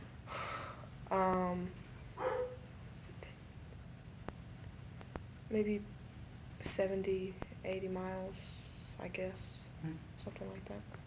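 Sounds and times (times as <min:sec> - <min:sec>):
low hum: 0:00.0 - 0:11.0
speech: 0:01.1 - 0:02.3, 0:05.5 - 0:06.0, 0:06.6 - 0:11.0
dog short tonal bark: 0:02.2 - 0:02.6.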